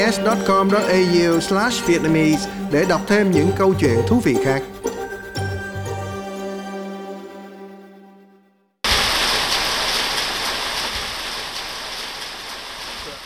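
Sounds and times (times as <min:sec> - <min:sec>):
speech: 0:00.0 - 0:04.8
short musical tone: 0:00.0 - 0:08.7
heavy rain on a tin roof: 0:08.9 - 0:13.2.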